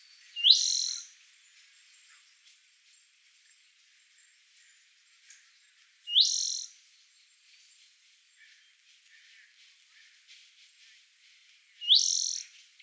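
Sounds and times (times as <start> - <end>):
Spotted Towhee Pipilo maculatus calling: 0.4 - 1.1, 6.1 - 6.7, 11.8 - 12.5.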